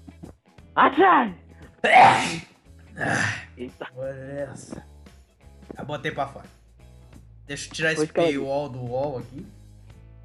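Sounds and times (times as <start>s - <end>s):
speech: 0.8s - 4.9s, 5.8s - 6.6s, 7.5s - 9.6s
person sneezing: 1.8s - 3.4s.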